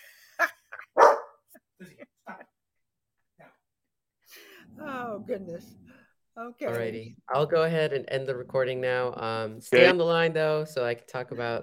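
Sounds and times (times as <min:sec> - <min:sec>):
dog barking and yipping: 0:01.0 - 0:01.4
speech: 0:05.3 - 0:05.8, 0:06.4 - 0:11.6.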